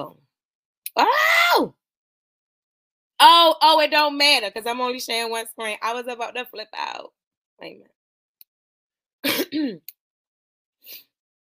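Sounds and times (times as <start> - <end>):
speech: 0.0 - 0.2, 3.2 - 8.0, 9.2 - 10.0
person clearing throat: 9.2 - 9.9.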